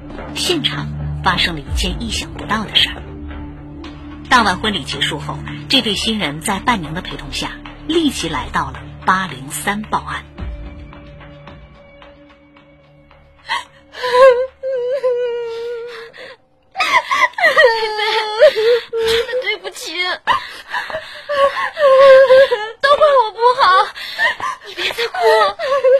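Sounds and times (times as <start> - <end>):
speech: 0.1 - 3.1, 4.3 - 10.4
woman crying after her wedding: 13.5 - 25.9.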